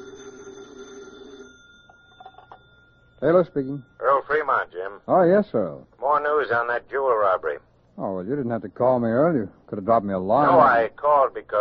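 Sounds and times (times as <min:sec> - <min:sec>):
old-fashioned telephone bell ringing on a desk at an FBI field office: 0:00.0 - 0:04.7
speech: 0:03.2 - 0:11.6.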